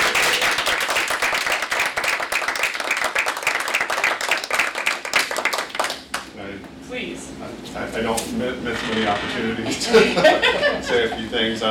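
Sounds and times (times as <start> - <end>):
room full of people applauding after a board motion carries: 0.0 - 6.3
speech: 8.0 - 11.6
laughter: 9.6 - 11.4.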